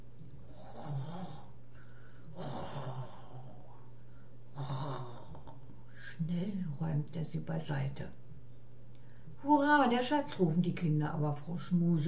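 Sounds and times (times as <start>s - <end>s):
low steady hum: 0.0s - 12.0s
soft snoring: 0.4s - 1.6s, 2.3s - 3.8s, 4.5s - 5.7s
speech: 6.2s - 8.2s, 9.4s - 12.0s.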